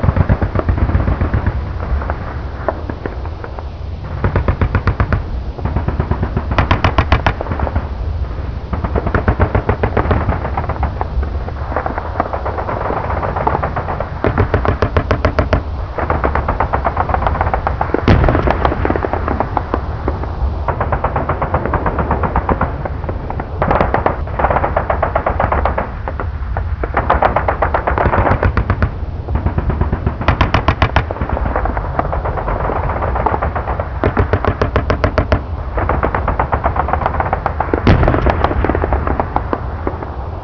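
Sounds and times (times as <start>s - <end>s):
bombing: 0.0s - 40.3s.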